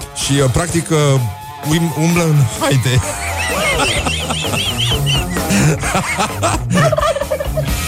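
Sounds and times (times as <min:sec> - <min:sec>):
speech: 0:00.3 - 0:07.8
laughter: 0:02.5 - 0:07.8
flock of wild turkeys gobbling in a town in the USA: 0:03.0 - 0:06.3.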